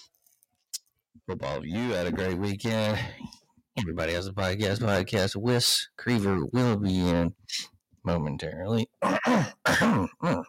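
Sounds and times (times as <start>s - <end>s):
speech: 1.2s - 10.4s
person clearing throat: 9.0s - 10.4s.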